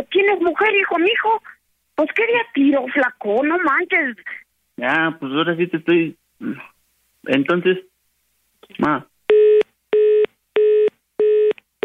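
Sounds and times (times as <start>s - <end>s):
speech: 0.0s - 7.9s, 8.6s - 9.1s
telephone tone after a hang-up beeping: 9.3s - 11.8s.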